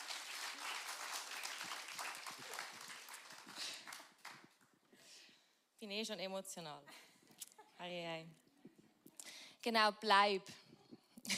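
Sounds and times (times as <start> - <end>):
audience applauding: 0.0 - 4.7
speech: 5.8 - 7.1, 7.8 - 8.4, 9.6 - 10.6.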